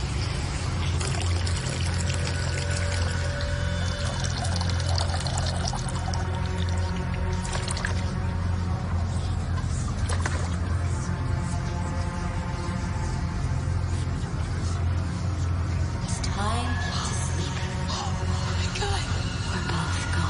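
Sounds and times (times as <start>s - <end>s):
low droning rumble: 0.0s - 20.2s
water running: 0.9s - 8.0s.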